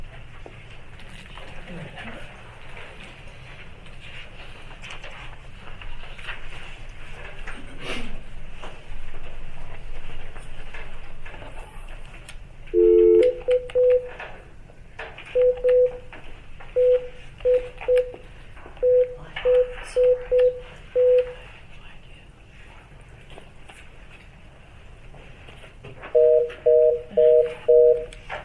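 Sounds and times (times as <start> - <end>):
faint room hum: 0.0 - 28.4
telephone keypad dialing beeps: 12.8 - 14.1, 15.3 - 16.0, 16.8 - 18.2, 18.8 - 21.4, 26.2 - 28.2.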